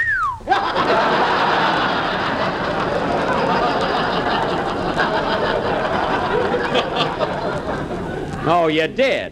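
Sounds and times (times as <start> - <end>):
person whistling at a girl: 0.0 - 0.5
laughter: 0.5 - 8.8
speech: 8.5 - 9.3.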